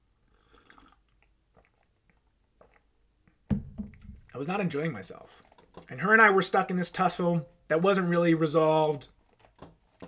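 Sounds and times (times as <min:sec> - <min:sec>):
slurping sip of coffee from a mug: 0:00.3 - 0:01.8
soft swallowing: 0:00.3 - 0:04.2
mug set down with a knock: 0:03.5 - 0:04.3
speech: 0:04.4 - 0:09.2.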